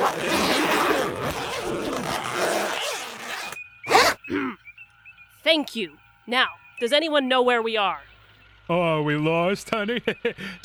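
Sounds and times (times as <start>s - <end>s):
zippers being zipped up: 0.0s - 4.2s
speech: 5.5s - 8.1s, 8.7s - 10.6s.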